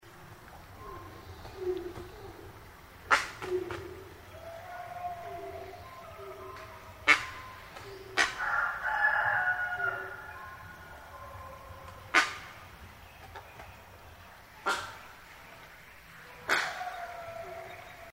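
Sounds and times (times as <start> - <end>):
Malayan night heron calling: 0.6 - 13.9, 14.6 - 15.4.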